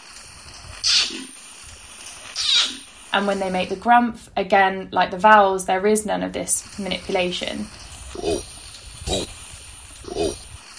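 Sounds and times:
orangutan kiss-squeaks, sharp and breathy: 0.8 - 1.4, 2.3 - 2.9, 8.1 - 9.4
speech: 3.2 - 8.5, 9.1 - 9.3.

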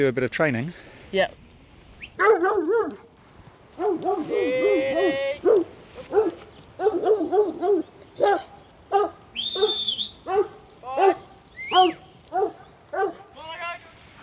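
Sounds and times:
speech: 0.0 - 1.4, 2.0 - 3.1, 3.8 - 13.2
high-pitched yips and whimpers of working farm dogs: 2.1 - 3.0, 3.8 - 13.2
working farm dogs barking and whining in the back of a ute: 2.2 - 3.1, 3.7 - 13.3.

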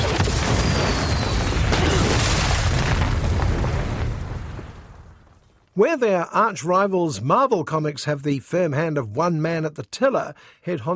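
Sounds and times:
rocket explosion in an action film scene: 0.0 - 5.4
speech: 5.8 - 10.9.

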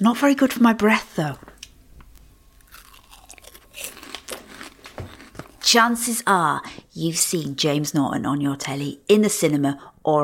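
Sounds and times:
speech: 0.0 - 1.5, 5.7 - 10.2
crunchy health snack dipped in spicy tomato sauce being chewed: 1.6 - 5.7.

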